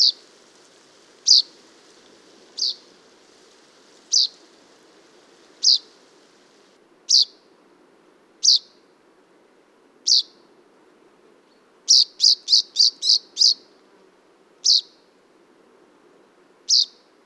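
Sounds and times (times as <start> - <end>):
common chaffinch Fringilla coelebs calls: 1.2 - 1.6, 2.5 - 7.4, 8.4 - 8.7, 10.1 - 10.4, 11.9 - 13.6, 14.6 - 15.0, 16.7 - 17.0.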